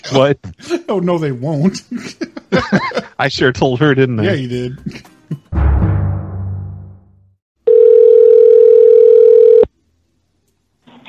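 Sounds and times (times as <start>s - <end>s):
speech: 0.1s - 5.1s
laughter: 1.6s - 5.5s
telephone dial tone while calling the police: 7.7s - 9.7s.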